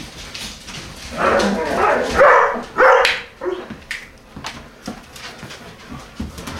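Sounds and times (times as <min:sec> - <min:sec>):
collies whimpering: 0:01.1 - 0:02.2
collies barking and yelping: 0:01.1 - 0:03.8.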